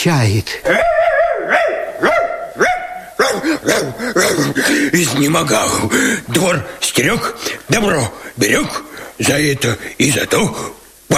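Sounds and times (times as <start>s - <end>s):
speech: 0.0s - 1.7s, 3.4s - 11.1s
dog barking excitedly in sharp high yelps: 0.7s - 4.7s
laughter: 3.3s - 5.9s.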